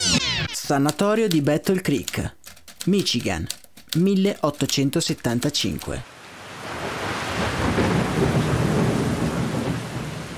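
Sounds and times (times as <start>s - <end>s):
speech: 0.7s - 6.1s
heavy pouring rain: 6.1s - 10.3s
deep rolling thunder of a nighttime thunderstorm: 6.6s - 10.3s.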